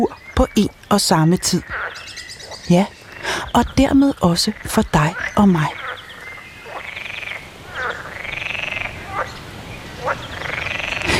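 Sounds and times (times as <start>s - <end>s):
speech: 0.0s - 1.8s, 2.7s - 5.8s
chorus of frogs croaking in a moat: 0.0s - 11.1s.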